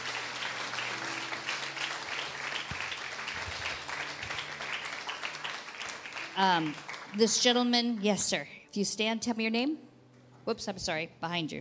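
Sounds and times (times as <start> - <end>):
large audience clapping: 0.0 - 8.0
speech: 6.4 - 11.5.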